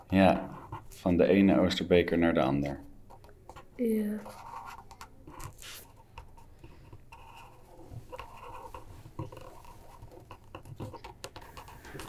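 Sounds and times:
pen scratching across a sheet of paper while signing: 0:00.0 - 0:01.1, 0:03.1 - 0:12.0
speech: 0:00.1 - 0:02.9, 0:03.8 - 0:04.5.

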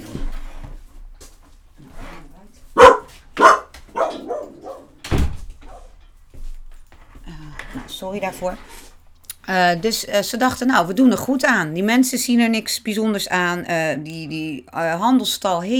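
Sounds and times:
dog barking: 0:02.7 - 0:05.0, 0:05.6 - 0:06.0
door-like thud: 0:03.4 - 0:05.9
speech: 0:08.0 - 0:08.8, 0:09.5 - 0:15.7.

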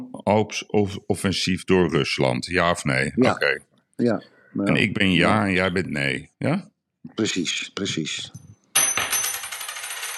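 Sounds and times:
speech: 0:00.3 - 0:08.4
flipped coin landing and spinning on a hard surface: 0:08.8 - 0:10.1.

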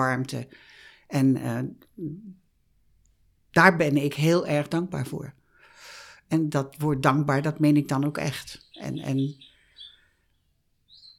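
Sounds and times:
speech: 0:00.0 - 0:02.4, 0:03.6 - 0:05.4, 0:06.3 - 0:09.5
small birds chirping: 0:06.8 - 0:11.1.

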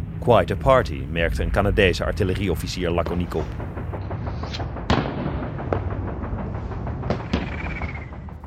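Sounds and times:
speech: 0:00.2 - 0:03.8, 0:04.5 - 0:04.7
massed Canadian and British artillery barrage with tank guns and mortars firing: 0:03.1 - 0:08.4
sharp loud artillery blasts: 0:03.1 - 0:08.4.

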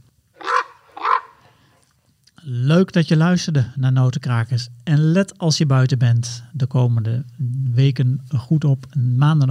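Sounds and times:
common raven croaking: 0:00.4 - 0:01.7
speech: 0:02.4 - 0:09.5.

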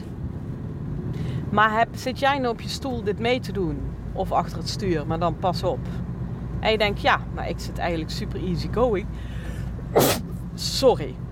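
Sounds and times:
speech: 0:01.5 - 0:11.2
sneeze: 0:09.9 - 0:10.3.

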